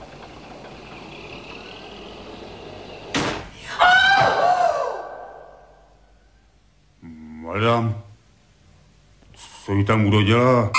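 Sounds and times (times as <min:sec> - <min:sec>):
squealing creaky ringing: 0:00.0 - 0:03.2
low steady hum: 0:00.0 - 0:10.7
door slamming shut: 0:02.7 - 0:04.5
speech: 0:07.7 - 0:08.0, 0:09.8 - 0:10.7.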